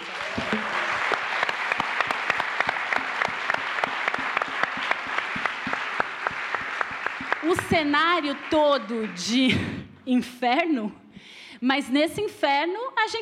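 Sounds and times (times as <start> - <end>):
audience applause: 0.0 - 9.4
speech: 7.8 - 11.0, 11.6 - 13.2.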